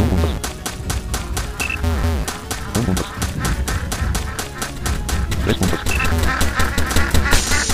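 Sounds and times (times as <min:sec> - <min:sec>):
game music: 0:00.0 - 0:07.7
duck quacking: 0:01.6 - 0:07.7
sharp effect sounds: 0:01.6 - 0:07.7
speech: 0:02.9 - 0:03.1.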